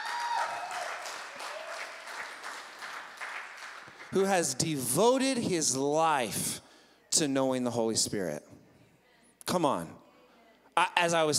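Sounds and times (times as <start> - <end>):
church congregation applauding: 0.0 - 4.4
speech: 4.1 - 6.6, 7.2 - 8.4, 9.5 - 10.0, 10.8 - 11.3.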